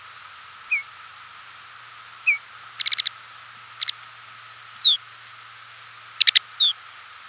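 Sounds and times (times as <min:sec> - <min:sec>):
Lapland longspur calls with downslurred whistled notes: 0:00.7 - 0:00.9, 0:02.2 - 0:03.1, 0:04.8 - 0:05.0, 0:06.2 - 0:06.8.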